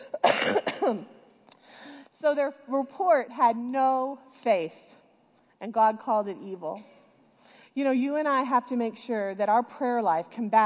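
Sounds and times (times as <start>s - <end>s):
man coughing while preaching: 0.0s - 1.1s
speech: 0.2s - 1.2s, 2.2s - 4.9s, 5.6s - 6.9s, 7.8s - 10.6s.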